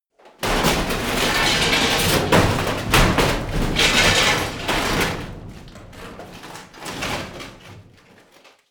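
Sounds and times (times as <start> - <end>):
medium metal crash: 0.4 - 8.1.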